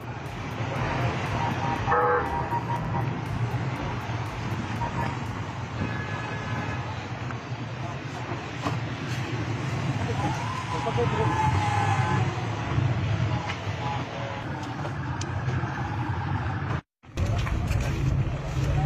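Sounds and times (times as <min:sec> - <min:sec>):
motorcade car horns honking in short bursts: 0:00.0 - 0:07.3
voices on a busy street: 0:00.0 - 0:08.6, 0:09.8 - 0:14.9
engines of a government minister's motorcade cars rumbling: 0:00.0 - 0:18.8.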